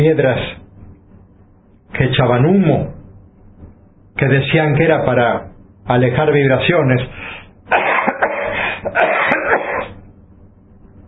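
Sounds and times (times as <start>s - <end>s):
speech: 0.0s - 0.6s, 1.9s - 3.0s, 4.2s - 7.8s, 8.8s - 9.4s
person coughing from smoke of burning stones: 7.7s - 10.0s.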